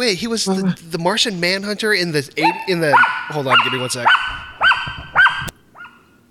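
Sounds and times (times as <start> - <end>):
speech: 0.0 - 4.4
dog barking: 2.4 - 6.0.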